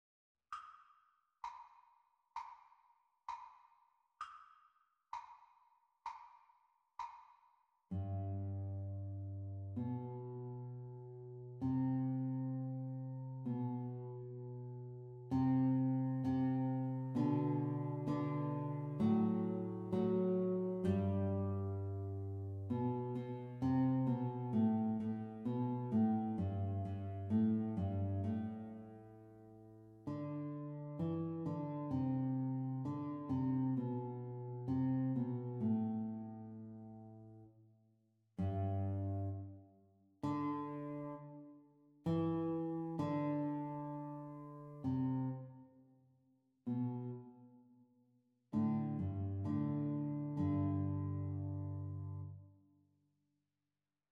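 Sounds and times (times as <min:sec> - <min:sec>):
guitar duet practice playalong: 0:07.9 - 0:37.5, 0:38.4 - 0:39.6, 0:40.2 - 0:45.6, 0:46.7 - 0:47.4, 0:48.5 - 0:52.4.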